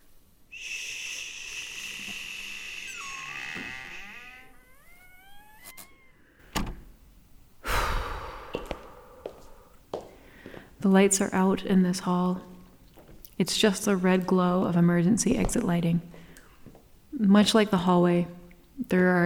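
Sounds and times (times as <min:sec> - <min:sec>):
squealing door hinge: 0:01.5 - 0:06.8
heavy fire exit door creaking open: 0:02.8 - 0:07.0
solid metallic door clunks: 0:06.5 - 0:06.9
speech: 0:10.9 - 0:12.5, 0:13.4 - 0:16.1, 0:17.2 - 0:19.2.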